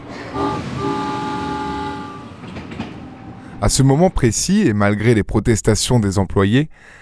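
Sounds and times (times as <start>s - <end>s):
train whistle blowing a sustained steady tone: 0.0s - 3.6s
faint rhythmic clacking of train wheels on the track: 0.0s - 4.4s
low mechanical rumble of a train: 0.0s - 4.7s
speech: 3.6s - 7.0s.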